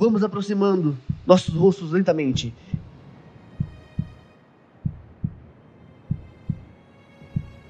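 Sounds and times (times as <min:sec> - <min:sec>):
speech: 0:00.0 - 0:02.8
heartbeat thumping: 0:01.0 - 0:03.0, 0:03.6 - 0:04.2, 0:04.8 - 0:05.5, 0:06.1 - 0:06.7, 0:07.3 - 0:07.6.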